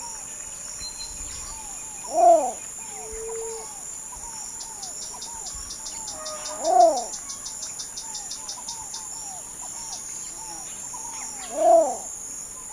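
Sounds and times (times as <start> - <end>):
constant high insect buzz: 0.0 - 12.7
least bittern repeating a low arched cooing note: 2.1 - 3.8, 6.3 - 7.1, 11.5 - 12.1.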